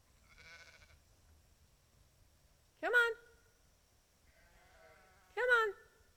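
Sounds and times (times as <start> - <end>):
faint bleating calls: 0.2 - 1.0, 4.3 - 5.7
sheep bleating: 0.2 - 1.0, 4.3 - 5.4.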